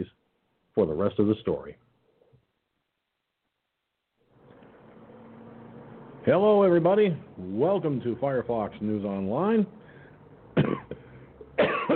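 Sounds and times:
speech: 0:00.8 - 0:01.9, 0:06.3 - 0:09.8
faint breath: 0:09.8 - 0:11.5
harsh coughs: 0:10.6 - 0:11.9.

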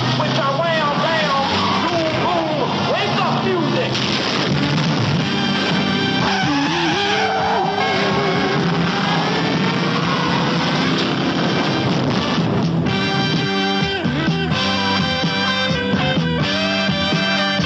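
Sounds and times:
car tires squealing and skidding: 0:00.0 - 0:12.8
car engines roaring and revving in a high-speed police chase: 0:00.0 - 0:17.6.

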